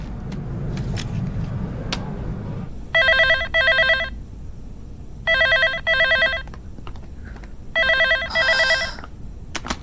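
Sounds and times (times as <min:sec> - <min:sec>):
quiet hum: 0:00.0 - 0:09.8
telephone ringing with quick double trill: 0:02.9 - 0:04.2, 0:05.3 - 0:06.5, 0:07.7 - 0:09.0.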